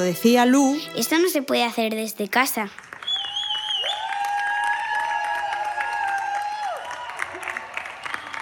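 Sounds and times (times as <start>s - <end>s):
speech: 0.0s - 3.0s
neighbours applauding hospital workers outdoors: 2.2s - 8.4s
long whistled tones: 3.0s - 4.2s.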